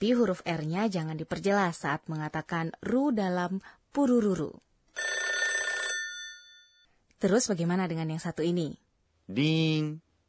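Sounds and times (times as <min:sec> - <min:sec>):
speech: 0:00.0 - 0:05.1, 0:07.2 - 0:10.0
old-style telephone bell ringing: 0:05.0 - 0:06.9.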